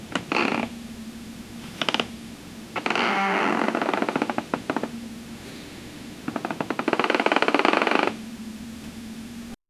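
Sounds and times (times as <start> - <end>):
gentle repetitive creak in a nursery: 0.0 - 0.8, 1.6 - 5.0, 6.2 - 8.2.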